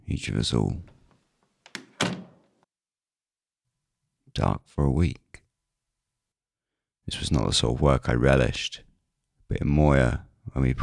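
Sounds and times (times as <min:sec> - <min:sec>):
speech: 0:00.1 - 0:01.0, 0:04.4 - 0:05.2, 0:07.1 - 0:08.9, 0:09.5 - 0:10.8
office door latch click: 0:01.7 - 0:02.4
heavy wooden office door thunk: 0:01.8 - 0:02.4.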